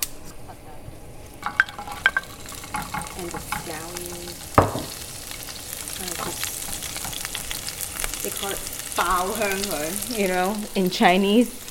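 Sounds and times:
ginger and scallion frying in hot oil: 1.1s - 11.6s
stirring clatter: 1.4s - 9.8s
sharp knocks: 4.6s - 5.0s
speech: 8.4s - 11.6s.

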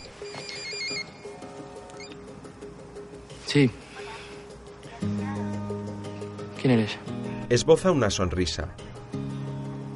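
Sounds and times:
mobile phone ringing with an electronic ringtone: 0.0s - 1.4s, 2.0s - 2.2s
low busy background: 0.0s - 9.2s
speech: 3.5s - 3.9s, 6.6s - 8.8s.

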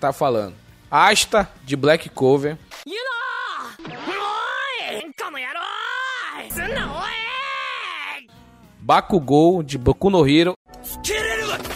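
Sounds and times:
speech: 0.0s - 3.0s, 8.9s - 11.7s
anime character screaming: 2.9s - 8.3s.

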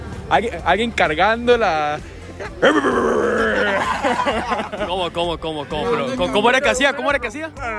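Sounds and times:
speech: 0.3s - 7.7s
laughter: 2.4s - 6.5s
person imitating loud snoring with their voice: 2.6s - 3.7s.

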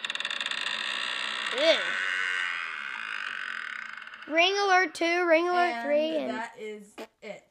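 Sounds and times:
door creaking open: 0.0s - 4.4s
speech: 1.5s - 1.9s, 4.3s - 7.4s.

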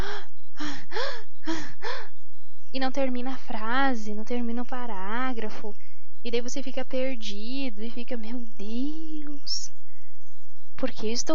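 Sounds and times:
person imitating gasping for breath: 0.0s - 2.1s
speech: 2.8s - 9.6s, 10.8s - 11.3s.

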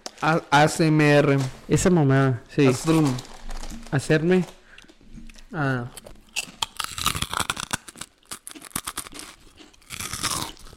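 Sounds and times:
speech: 0.2s - 3.3s, 3.9s - 4.6s, 5.5s - 6.0s
crispy pork rinds being chewed: 2.8s - 10.7s.

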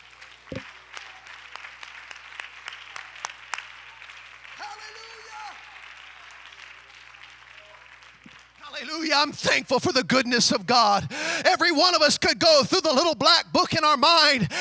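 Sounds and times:
audience clapping hands in praise: 0.0s - 11.1s
speech: 8.9s - 14.6s.

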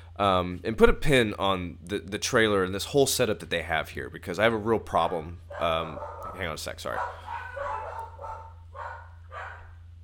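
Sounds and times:
constant low electrical hum: 0.0s - 10.0s
speech: 0.2s - 7.3s
dogs barking: 4.9s - 9.9s.

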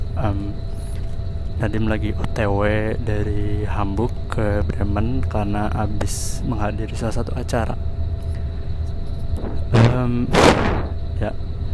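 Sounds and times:
faint high whine: 0.0s - 11.7s
low engine drone of a moving bus: 0.0s - 11.7s
speech: 0.2s - 0.8s, 1.6s - 7.9s, 10.0s - 11.5s
road rumble of a moving bus: 9.3s - 11.5s.

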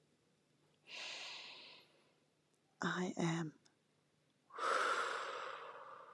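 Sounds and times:
slow deep breath: 0.9s - 2.2s, 4.5s - 6.1s
speech: 2.8s - 3.6s.

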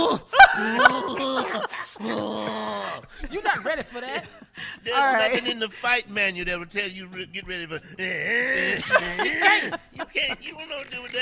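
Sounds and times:
person imitating a growl: 0.0s - 3.1s, 8.0s - 9.5s
laughter: 0.0s - 11.2s
speech: 3.3s - 11.2s.

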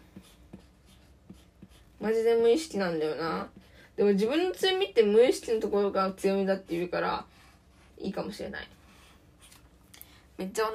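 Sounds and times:
pen writing on paper: 0.0s - 2.0s
speech: 2.0s - 7.4s, 8.0s - 8.8s, 10.4s - 10.7s.

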